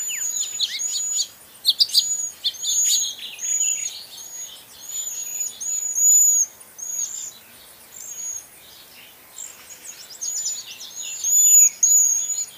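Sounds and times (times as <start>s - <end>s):
cedar waxwing Bombycilla cedrorum high hissing notes and chirps: 0.0s - 12.5s.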